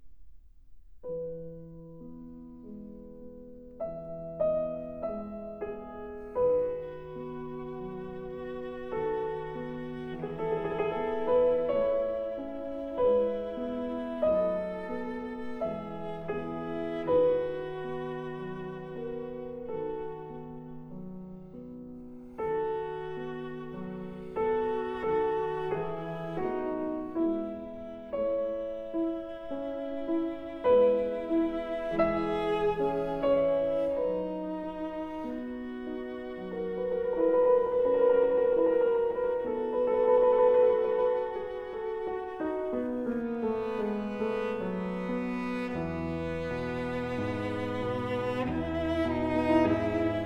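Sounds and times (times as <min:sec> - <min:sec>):
cello and piano sonata in A major, slow movement: 0:00.0 - 0:50.2.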